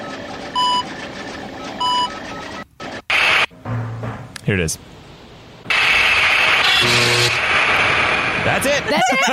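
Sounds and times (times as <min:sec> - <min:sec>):
low hum: 0:03.1 - 0:08.4
speech: 0:04.5 - 0:05.0, 0:08.5 - 0:09.3
electric zap sound effect with crackling buzz: 0:05.7 - 0:08.3
laughter: 0:08.8 - 0:09.3.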